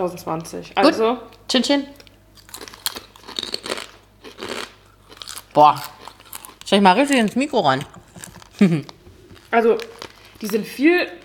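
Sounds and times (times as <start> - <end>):
speech: 0.0 - 2.0, 5.6 - 6.0, 6.7 - 8.0, 8.6 - 8.9, 9.5 - 11.2
crunchy potato chips being bitten and chewed: 2.4 - 11.2.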